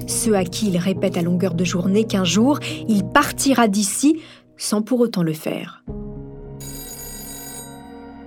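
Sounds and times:
speech: 0.1s - 6.0s
telephone bell ringing: 6.6s - 8.2s.

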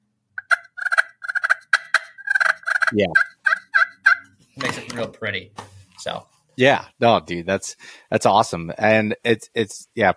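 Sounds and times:
turkey clucks played on a friction call: 0.4s - 4.4s
speech: 2.9s - 3.3s, 4.6s - 10.1s.

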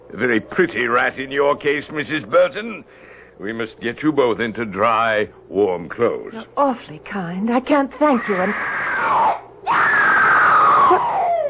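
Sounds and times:
speech: 0.1s - 8.8s
person crying out: 8.2s - 11.4s
person screaming: 8.2s - 11.4s.

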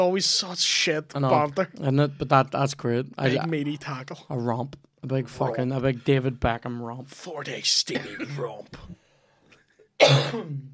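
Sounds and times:
speech: 0.0s - 9.0s, 10.0s - 10.7s
person coughing while eating popcorn: 7.9s - 8.6s, 9.9s - 10.7s.

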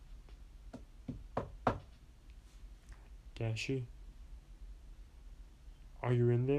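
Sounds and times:
knocking on a wooden door: 0.7s - 2.0s
speech: 3.4s - 4.0s, 6.1s - 6.5s.

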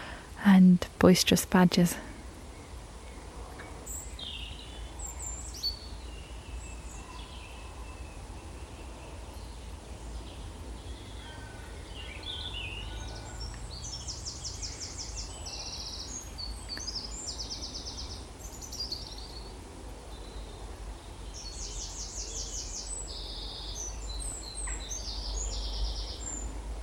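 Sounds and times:
speech: 0.4s - 2.1s
wren singing high-pitched trilling phrases: 2.6s - 26.6s.

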